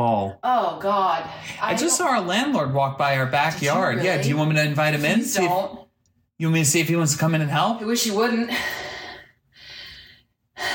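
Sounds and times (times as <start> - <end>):
speech: 0.0 - 5.8, 6.4 - 8.9
heavy breathing from someone out of breath after hacksawing a metal bolt: 8.5 - 10.7.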